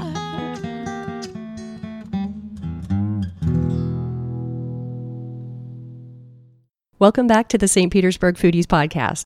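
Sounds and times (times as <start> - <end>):
clean guitar playing plucked notes and strummed chord: 0.0 - 6.6
speech: 7.0 - 9.2.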